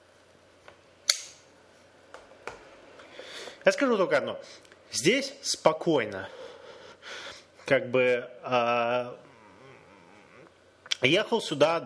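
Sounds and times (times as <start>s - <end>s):
lighter flicked with a sharp scrape-and-snap: 1.1s - 1.4s
speech: 3.6s - 6.4s, 7.7s - 9.3s, 11.0s - 11.8s.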